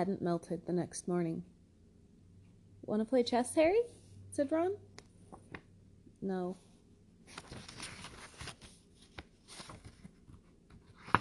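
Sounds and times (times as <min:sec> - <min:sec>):
speech: 0:00.0 - 0:01.6, 0:02.9 - 0:04.9, 0:06.2 - 0:06.6
fingers fumbling to turn book pages: 0:07.3 - 0:11.1
paper rustling: 0:07.3 - 0:11.1.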